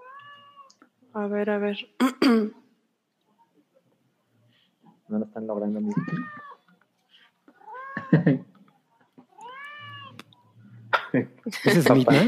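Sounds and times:
cat meowing with drawn-out wavering calls: 0.0 - 0.8, 5.9 - 6.7, 7.6 - 8.2, 9.3 - 10.4
speech: 1.2 - 2.6, 5.1 - 6.4, 8.1 - 8.5, 11.1 - 12.2
laughter: 8.0 - 8.6, 11.5 - 12.2.

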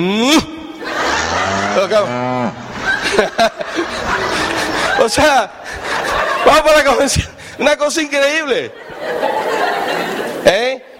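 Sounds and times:
speech: 0.0 - 0.6, 1.8 - 2.6, 3.2 - 4.2, 5.0 - 9.3
laughter: 0.2 - 10.9
cow mooing: 1.0 - 2.8.

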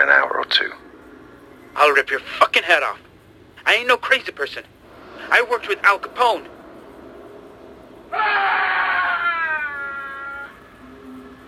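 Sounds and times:
speech: 0.0 - 0.8, 1.8 - 6.5
man screaming, echoing down a corridor: 8.1 - 10.6.

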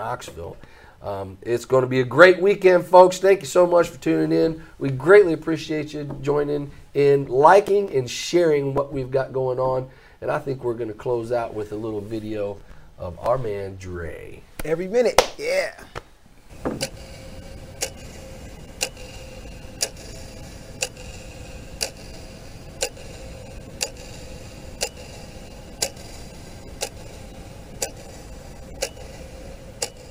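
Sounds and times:
speech: 0.0 - 16.0
clock ticking: 16.5 - 30.0
low rumbling hum: 16.5 - 30.0.

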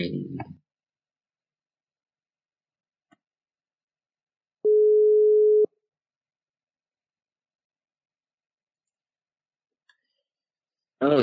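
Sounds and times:
ring-back tone of an outgoing telephone call: 4.7 - 5.7.

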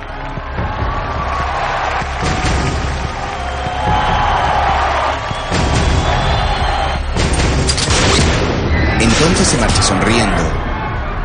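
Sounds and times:
booms and crashing noise in a film mix: 0.4 - 11.1
rifle gunshot in a thriller film scene: 5.3 - 6.4, 7.2 - 9.8
speech: 9.2 - 10.6.

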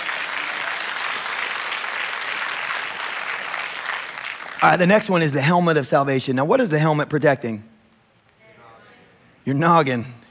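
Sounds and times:
congregation clapping: 0.0 - 5.4
speech: 4.6 - 7.7, 9.5 - 10.2.

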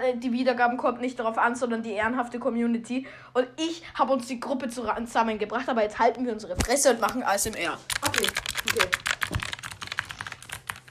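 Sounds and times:
speech: 0.0 - 9.0
rapid typing on a computer keyboard: 7.0 - 10.8.

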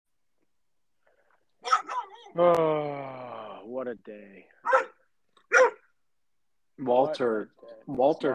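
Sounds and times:
pit bull barking: 1.6 - 2.2, 4.6 - 5.9
speech: 2.3 - 4.9, 6.8 - 8.3.

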